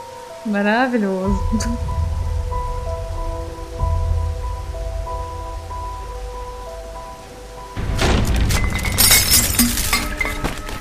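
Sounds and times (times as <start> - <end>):
heavy rain: 0.0 - 10.7
speech: 0.4 - 2.0
low rumble with steady humming tones: 1.3 - 9.2.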